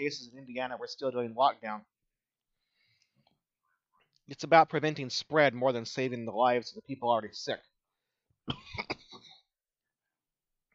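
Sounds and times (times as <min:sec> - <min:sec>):
speech: 0:00.0 - 0:02.0, 0:04.3 - 0:07.7, 0:08.5 - 0:09.0
harsh cough: 0:08.5 - 0:09.5.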